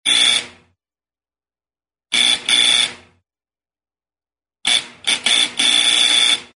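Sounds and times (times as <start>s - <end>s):
door alarm buzzer: 0.0s - 0.8s, 2.1s - 3.2s, 4.6s - 6.5s.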